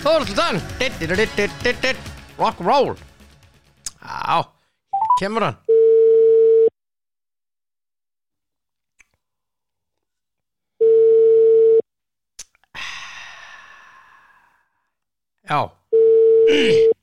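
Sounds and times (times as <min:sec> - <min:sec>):
speech: 0:00.0 - 0:03.1, 0:04.0 - 0:04.6, 0:05.2 - 0:05.8, 0:15.5 - 0:15.8, 0:16.5 - 0:17.0
telephone ringing tone while a call is placed: 0:05.0 - 0:06.7, 0:10.8 - 0:11.8, 0:15.9 - 0:16.9.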